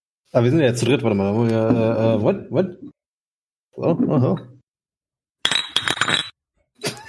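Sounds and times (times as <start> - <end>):
speech: 0.3 - 3.0, 3.8 - 4.6
glass beer bottles clinking together in a toast: 5.4 - 6.4.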